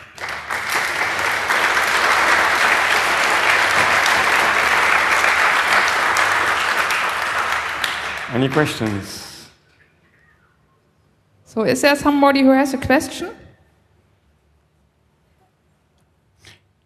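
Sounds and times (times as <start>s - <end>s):
audience at a talk applauding the speaker: 0.0s - 9.5s
speech: 8.4s - 9.2s, 11.6s - 13.4s.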